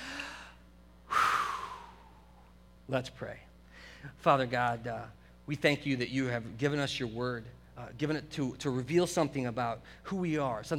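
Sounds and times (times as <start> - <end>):
deep human breath: 0.0 - 2.5, 3.7 - 4.1
speech: 2.9 - 10.7.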